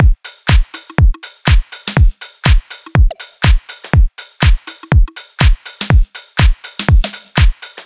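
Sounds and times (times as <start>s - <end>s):
full drums: 0.0s - 7.8s.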